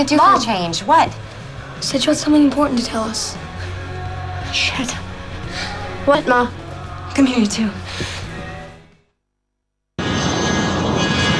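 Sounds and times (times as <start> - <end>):
speech: 0.0 - 3.5, 4.5 - 5.0, 5.6 - 6.6, 7.2 - 8.2
private jet engine roaring: 10.0 - 11.3.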